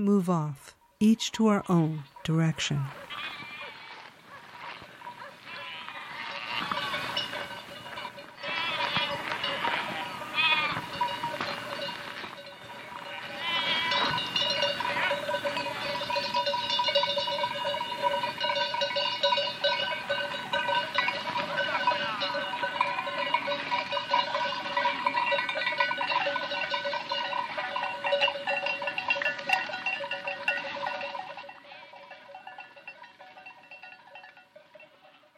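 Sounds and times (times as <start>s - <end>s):
speech: 0.0s - 3.4s
flock of sheep bleating: 2.8s - 7.2s, 8.4s - 11.1s, 13.0s - 16.0s
bells clanking among sheep: 4.9s - 35.3s.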